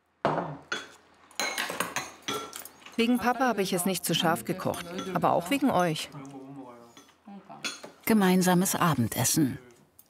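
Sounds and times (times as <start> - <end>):
bowls and cutlery clinking as dinner is served at a family table: 0.3 - 8.1
speech: 3.0 - 6.4, 8.1 - 9.7.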